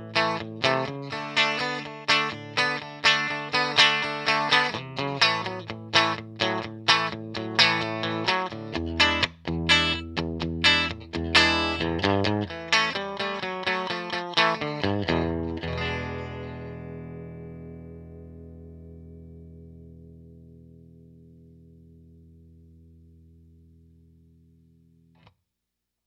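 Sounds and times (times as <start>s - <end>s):
dry riff with sharp tone attack: 0.2s - 21.0s.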